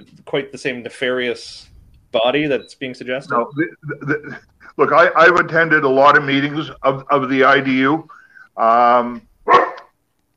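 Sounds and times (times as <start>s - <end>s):
speech: 0.0s - 9.6s
dog barking: 9.5s - 9.9s.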